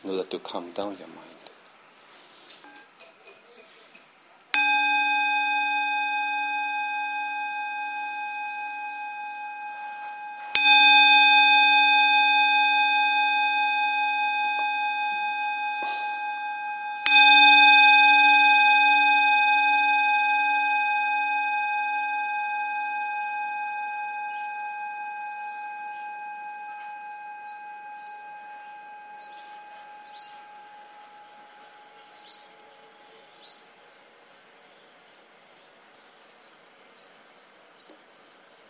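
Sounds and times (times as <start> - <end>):
speech: 0.0 - 1.4
meditation bell at a Dhamma retreat rung to calm the mind: 4.5 - 35.4
low hum: 4.6 - 37.2.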